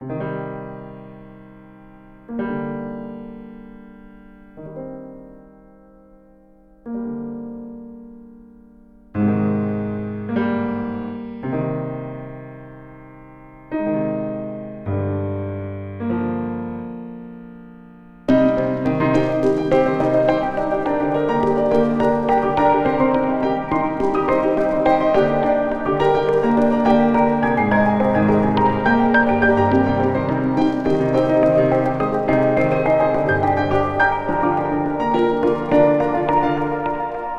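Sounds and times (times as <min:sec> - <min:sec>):
piano chords: 0:00.0 - 0:37.3.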